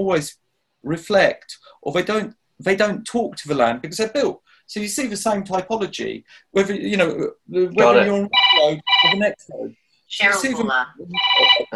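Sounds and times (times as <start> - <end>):
speech: 0.0 - 11.7
mobile phone ringing with electronic melodic ringtone: 7.8 - 9.3, 11.2 - 11.7.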